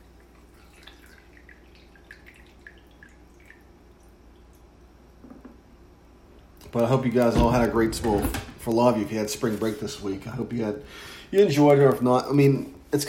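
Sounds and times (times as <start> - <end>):
low steady hum: 0.0 - 13.0
coffee being poured into a cup: 0.1 - 4.2
speech: 6.7 - 13.0.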